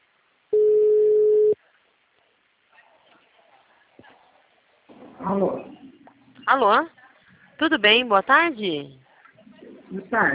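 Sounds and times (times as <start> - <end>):
telephone ringback tone while a call is placed: 0.6 - 1.6
speech: 5.3 - 5.7, 6.5 - 7.0, 7.6 - 9.0, 9.9 - 10.3.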